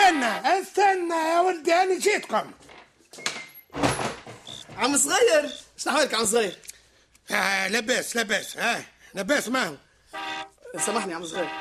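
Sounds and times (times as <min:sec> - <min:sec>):
speech: 0:00.2 - 0:02.6, 0:04.8 - 0:06.7, 0:07.3 - 0:11.5
door being opened with rattling and scraping: 0:02.6 - 0:05.2.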